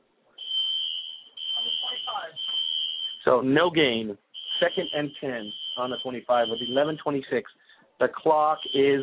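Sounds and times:
high-pitched electronic fire alarm tone at a football game: 0.4s - 3.3s, 4.4s - 7.0s, 8.4s - 9.0s
speech: 3.3s - 9.0s.

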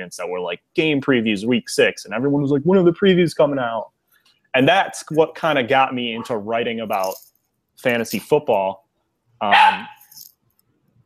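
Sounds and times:
speech: 0.0s - 3.9s, 4.5s - 8.8s, 9.4s - 10.0s
dog barking: 6.1s - 6.4s, 9.5s - 10.0s.

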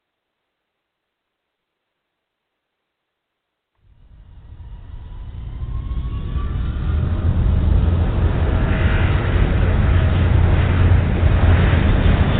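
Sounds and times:
jet airliner engines spooling up for takeoff: 3.9s - 12.3s.

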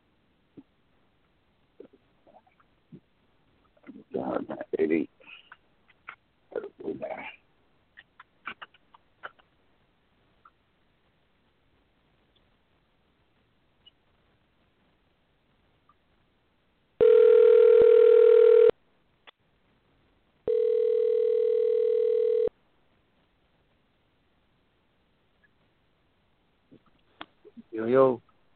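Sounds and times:
speech: 4.4s - 5.1s
phone ringing with incoming call: 17.0s - 18.7s, 20.5s - 22.5s.

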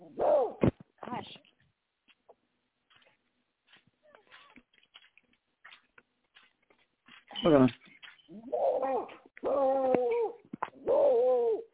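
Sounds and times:
speech: 7.4s - 7.8s
dog giving drawn-out whiny vocal calls: 8.4s - 11.7s.

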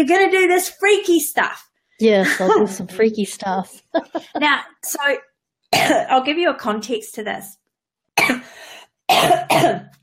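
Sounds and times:
speech: 0.0s - 7.6s, 8.3s - 10.0s
laughter: 3.9s - 4.6s
person coughing: 5.7s - 6.1s, 8.2s - 10.0s.

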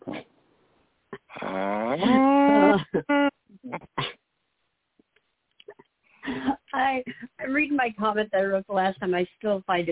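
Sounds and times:
short vocal bursts: 1.2s - 4.2s
human voice imitating a cow moo: 1.3s - 3.9s
speech: 8.0s - 9.9s.

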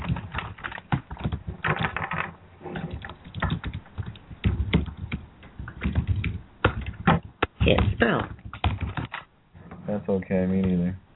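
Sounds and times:
keyboard typing: 0.0s - 9.3s
speech: 7.7s - 8.4s, 10.0s - 11.0s.

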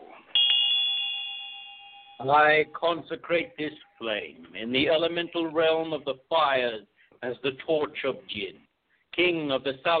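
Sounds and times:
single bright ritual bell struck once: 0.4s - 2.3s
speech: 2.2s - 9.9s.

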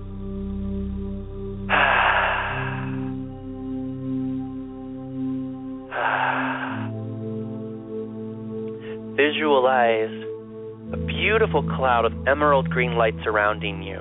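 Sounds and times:
soft sustained musical drone: 0.0s - 13.9s
deep breaths during a guided meditation: 1.7s - 3.3s, 5.9s - 7.2s, 8.7s - 9.2s
speech: 9.2s - 10.2s, 11.2s - 13.9s.

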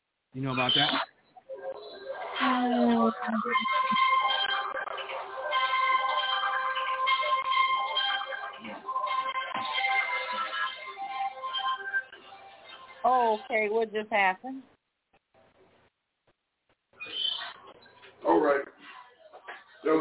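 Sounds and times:
speech: 0.3s - 1.1s, 2.4s - 4.2s, 13.4s - 14.8s
mobile phone ringtone with bright repeating electronic melody: 3.4s - 13.0s.

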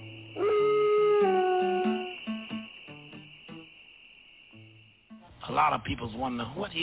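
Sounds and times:
man imitating a wolf howl: 0.4s - 2.2s
speech: 5.6s - 6.8s.

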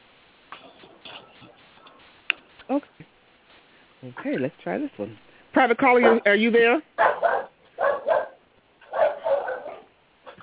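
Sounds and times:
speech: 2.7s - 3.1s, 4.0s - 7.3s
dog barking over a telephone line: 6.0s - 6.3s, 7.0s - 9.9s.

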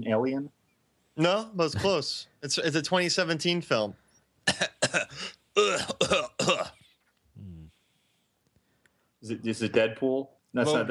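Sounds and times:
speech: 0.0s - 0.6s, 1.2s - 6.8s, 9.2s - 10.8s
person faking harsh exaggerated coughs imitating an ill character: 4.4s - 6.9s
short low groan: 7.4s - 7.7s.

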